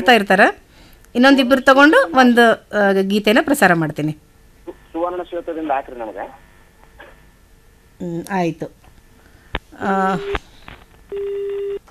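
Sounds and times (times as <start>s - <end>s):
speech: 0.0s - 6.4s, 8.0s - 8.8s, 9.7s - 10.5s
steady fairly loud single telephone line tone: 11.1s - 11.8s.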